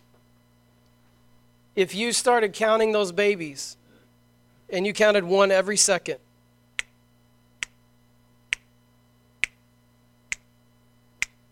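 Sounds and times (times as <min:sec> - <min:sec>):
faint low hum: 0:00.0 - 0:11.5
speech: 0:01.8 - 0:03.8, 0:04.7 - 0:06.2
crisp finger snaps: 0:06.8 - 0:07.0, 0:07.6 - 0:07.8, 0:08.5 - 0:08.7, 0:09.4 - 0:09.6, 0:10.3 - 0:10.5, 0:11.2 - 0:11.4.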